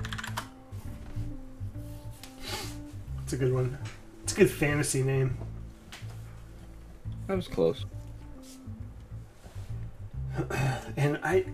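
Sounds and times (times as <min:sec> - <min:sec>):
typing on a computer keyboard: 0:00.0 - 0:00.5
speech: 0:03.3 - 0:05.5, 0:07.3 - 0:08.0, 0:10.4 - 0:11.5.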